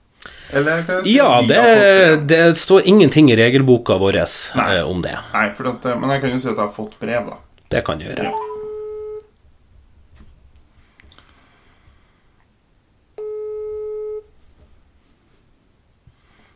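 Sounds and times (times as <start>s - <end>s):
speech: 0.5s - 8.5s
outgoing phone call ringing tone: 8.2s - 9.3s, 13.2s - 14.2s.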